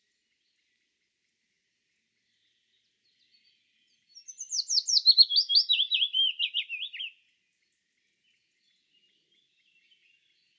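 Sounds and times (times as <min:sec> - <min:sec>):
willow warbler singing: 0:02.2 - 0:07.2, 0:08.2 - 0:10.5.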